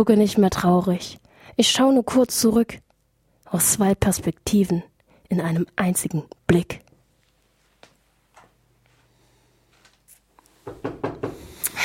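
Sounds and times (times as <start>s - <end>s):
speech: 0.0s - 2.8s, 3.5s - 6.8s
knuckles knocking on a wooden tabletop as applause: 10.7s - 11.5s.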